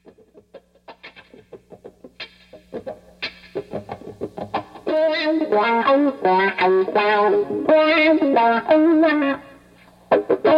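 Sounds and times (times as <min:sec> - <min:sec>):
distorted electric guitar riff through a wah-wah pedal: 0:00.0 - 0:10.5
speech: 0:02.8 - 0:04.4, 0:05.1 - 0:09.5.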